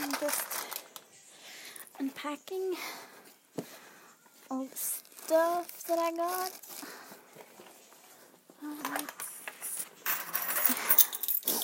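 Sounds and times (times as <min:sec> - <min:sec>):
speech: 0:02.0 - 0:03.7, 0:04.5 - 0:06.7, 0:08.6 - 0:09.2
keys jangling as they are put down: 0:10.1 - 0:11.6.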